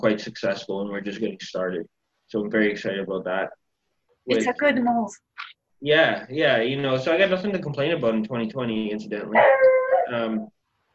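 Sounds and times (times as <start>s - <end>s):
speech: 0.0s - 3.6s, 4.2s - 10.6s
dog howling or whining at a window: 9.3s - 10.5s.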